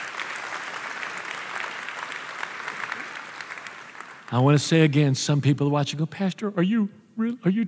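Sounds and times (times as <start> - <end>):
audience clapping: 0.0 - 5.0
speech: 4.3 - 7.6.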